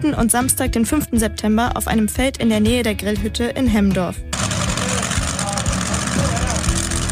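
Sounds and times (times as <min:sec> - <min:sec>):
speech: 0:00.0 - 0:04.3
tractor engine revving at a tractor pulling event on a field: 0:04.3 - 0:07.1.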